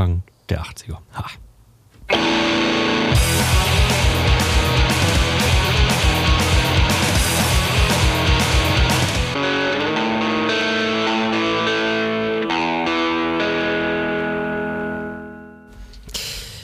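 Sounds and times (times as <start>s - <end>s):
speech: 0.1s - 1.4s
heavily distorted electric guitar: 2.1s - 15.7s
pounding drums: 3.2s - 9.4s.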